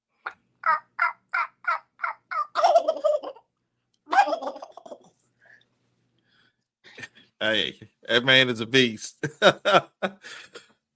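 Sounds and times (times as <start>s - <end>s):
person imitating turkey hen yelps: 0.2s - 3.2s
speech: 7.4s - 10.6s.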